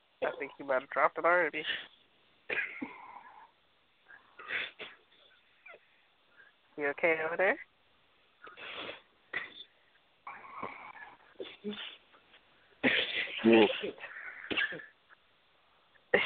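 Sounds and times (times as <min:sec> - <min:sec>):
speech: 0:00.2 - 0:02.7, 0:06.8 - 0:07.7, 0:11.6 - 0:11.9, 0:13.4 - 0:14.9
person coughing harshly: 0:12.8 - 0:15.0.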